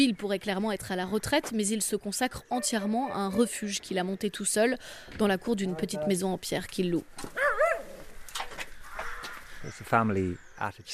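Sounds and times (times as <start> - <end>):
speech: 0.0 - 7.6, 9.6 - 10.9
faint noise: 0.0 - 10.9
crows cawing in trees overhead: 7.4 - 9.8.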